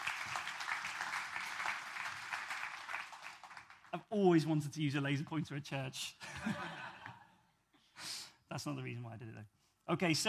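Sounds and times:
crowd clapping: 0:00.0 - 0:04.0
speech: 0:03.9 - 0:06.8, 0:08.6 - 0:10.2.

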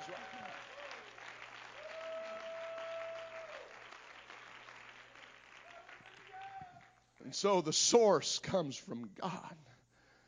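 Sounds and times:
audience clapping hands in praise: 0:00.0 - 0:07.7
speech: 0:07.3 - 0:09.7.

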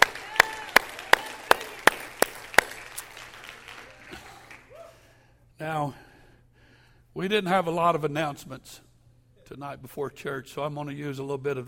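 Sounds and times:
audience clapping in unison: 0:00.0 - 0:04.8
speech: 0:05.6 - 0:06.0, 0:07.2 - 0:08.9, 0:09.5 - 0:11.6.

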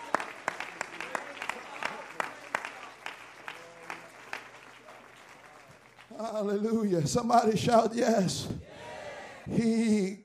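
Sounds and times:
audience clapping hands in a steady rhythm: 0:00.0 - 0:07.5
speech: 0:06.2 - 0:08.7, 0:09.5 - 0:10.2.

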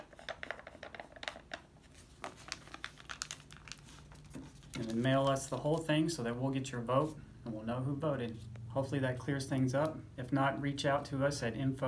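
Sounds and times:
paper rustling and crinkling as a voting envelope is folded into a paper mailer envelope and sealed: 0:00.2 - 0:06.1
speech: 0:04.8 - 0:11.8.

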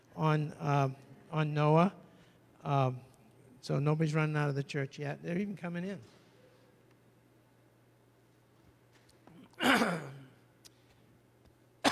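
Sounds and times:
speech: 0:00.2 - 0:02.0, 0:02.6 - 0:06.2
preacher clearing throat during a church sermon: 0:09.4 - 0:10.4.

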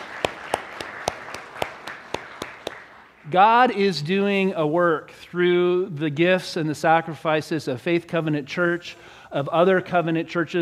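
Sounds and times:
one pair of hands clapping in a steady brisk rhythm: 0:00.0 - 0:03.4
speech: 0:03.3 - 0:10.5.

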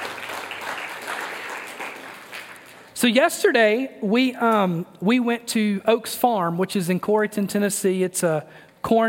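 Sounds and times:
crowd of people applauding: 0:00.0 - 0:03.0
speech: 0:03.0 - 0:09.0.

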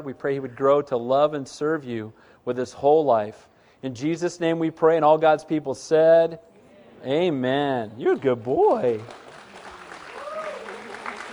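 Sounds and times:
speech: 0:00.0 - 0:09.2
church audience clapping: 0:08.1 - 0:11.3.

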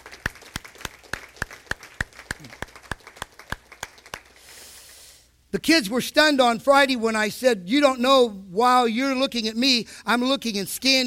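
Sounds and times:
audience applause: 0:00.0 - 0:04.4
speech: 0:02.4 - 0:02.6, 0:05.5 - 0:11.0.

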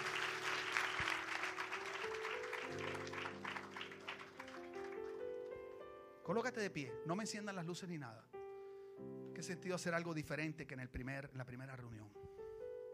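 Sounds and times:
church audience applauding loudly: 0:00.0 - 0:05.5
speech: 0:06.3 - 0:08.4, 0:09.0 - 0:12.3.

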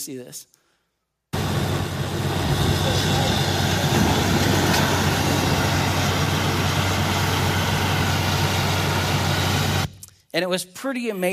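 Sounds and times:
speech: 0:00.0 - 0:00.6, 0:10.3 - 0:11.3
well-drilling truck engine running while drilling for water: 0:01.4 - 0:09.9.

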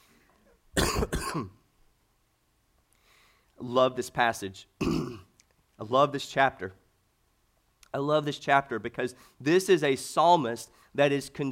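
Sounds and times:
harsh cough: 0:00.8 - 0:01.6, 0:04.8 - 0:05.3
rough throat clearing: 0:00.8 - 0:01.6, 0:04.8 - 0:05.3
speech: 0:01.3 - 0:01.6, 0:03.6 - 0:05.0, 0:05.8 - 0:06.8, 0:07.9 - 0:11.5.

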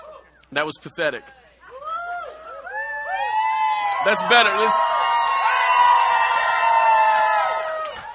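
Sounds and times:
speech: 0:00.5 - 0:01.4, 0:04.0 - 0:05.0
large audience shouting and cheering: 0:01.2 - 0:08.1.

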